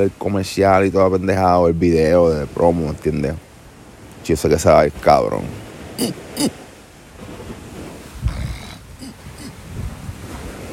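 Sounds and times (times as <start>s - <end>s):
speech: 0.0s - 3.5s, 4.2s - 6.6s
faint hiss: 0.0s - 10.7s
person clearing an itchy throat: 6.0s - 6.6s, 8.3s - 9.6s.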